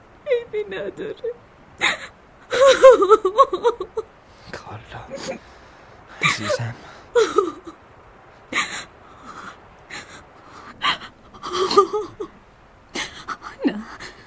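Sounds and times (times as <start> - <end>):
speech: 0.6 - 2.1, 2.8 - 4.1, 6.3 - 7.5
woman sobbing: 1.8 - 4.1, 6.2 - 7.8, 8.5 - 12.3, 13.0 - 14.2.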